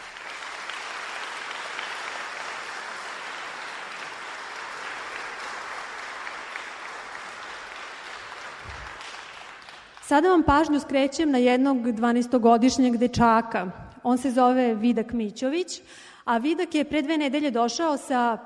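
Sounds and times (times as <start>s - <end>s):
audience applause greeting honored guests at a stage event: 0.0s - 10.1s
speech: 10.1s - 18.4s.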